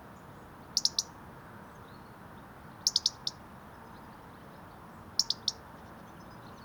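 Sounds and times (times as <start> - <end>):
low background hiss: 0.0 - 6.6
European robin Erithacus rubecula giving sharp high ticking calls: 0.8 - 1.1, 2.8 - 3.4, 5.2 - 5.6.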